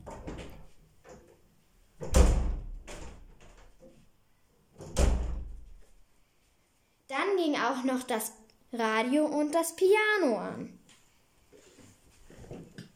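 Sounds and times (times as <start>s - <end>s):
door opening and closing: 2.0s - 4.0s, 4.8s - 5.8s
speech: 7.4s - 10.8s.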